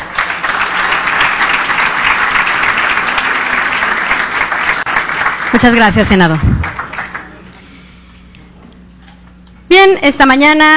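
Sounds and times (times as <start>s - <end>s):
audience applause: 0.0s - 7.5s
speech: 5.5s - 6.6s, 9.9s - 10.7s.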